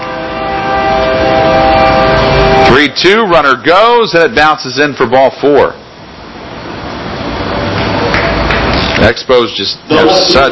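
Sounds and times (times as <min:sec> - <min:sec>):
long train rolling by on rails: 0:00.0 - 0:03.6, 0:05.8 - 0:09.0
horn-like tones: 0:00.0 - 0:04.0
speech: 0:02.8 - 0:05.8, 0:09.0 - 0:10.4.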